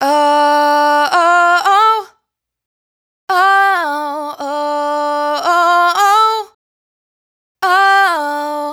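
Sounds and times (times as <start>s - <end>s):
person singing dry raw vocal riff in D minor: 0.0s - 2.2s, 3.3s - 6.6s, 7.6s - 8.7s.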